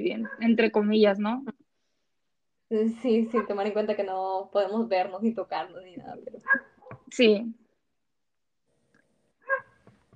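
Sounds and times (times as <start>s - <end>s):
speech: 0.0s - 1.6s, 2.7s - 7.6s
dog barking: 0.2s - 0.5s, 3.3s - 3.6s, 9.4s - 9.8s.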